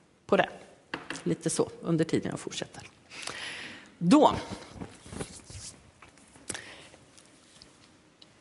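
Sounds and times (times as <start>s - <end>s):
speech: 0.3s - 0.6s, 1.2s - 3.4s, 4.0s - 4.9s
rustling and handling noises of a wheel: 4.3s - 8.3s.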